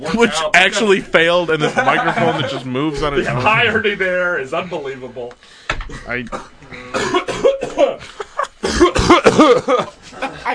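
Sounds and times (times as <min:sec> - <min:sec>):
speech: 0:00.0 - 0:08.3, 0:09.2 - 0:10.5
laughter: 0:01.4 - 0:03.8, 0:06.8 - 0:10.5
person clearing throat: 0:05.9 - 0:08.0, 0:08.6 - 0:09.9
person coughing: 0:05.9 - 0:09.9.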